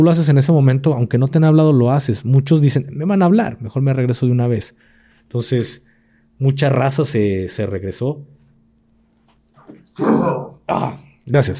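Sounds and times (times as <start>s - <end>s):
speech: 0.0s - 8.4s, 9.7s - 11.5s
person sneezing: 9.6s - 11.2s.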